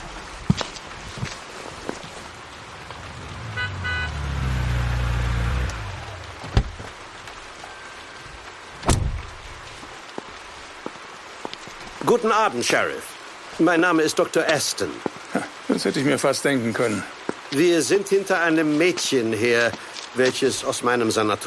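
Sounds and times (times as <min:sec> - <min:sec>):
rain: 0:00.0 - 0:21.4
car engine rumble: 0:02.2 - 0:07.8
car door thud: 0:06.4 - 0:06.8, 0:08.8 - 0:09.3
speech: 0:12.2 - 0:21.4.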